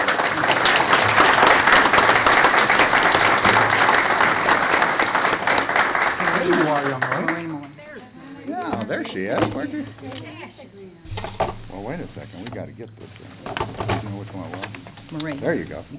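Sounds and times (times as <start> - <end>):
audience applause: 0.0 - 7.7
speech: 9.2 - 10.6, 12.0 - 15.9.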